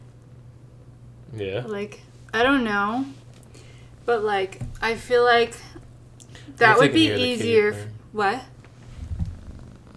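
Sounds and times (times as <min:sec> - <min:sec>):
speech: 0:01.3 - 0:03.2, 0:04.0 - 0:05.7, 0:06.5 - 0:08.5
cat purring: 0:08.8 - 0:09.9.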